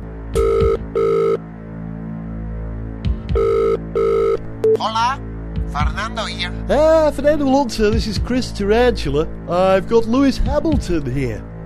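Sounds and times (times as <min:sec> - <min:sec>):
telephone ringing in electronic double trills: 0:00.4 - 0:01.4, 0:03.3 - 0:04.8
speech: 0:04.8 - 0:11.5.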